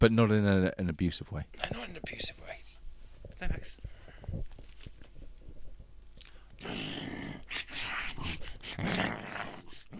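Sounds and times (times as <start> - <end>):
speech: 0.0 - 2.7, 3.4 - 4.5, 8.2 - 9.3
dog growling and snarling while play-fighting: 6.6 - 9.9.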